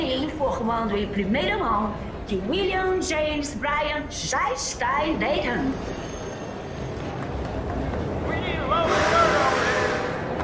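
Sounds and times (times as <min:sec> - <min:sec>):
speech: 0:00.4 - 0:06.2
train rumbling into a station: 0:05.0 - 0:10.4.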